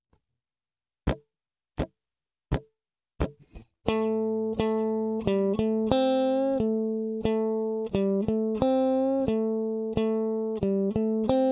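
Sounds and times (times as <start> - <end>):
blues guitar lick: 3.2 - 11.5.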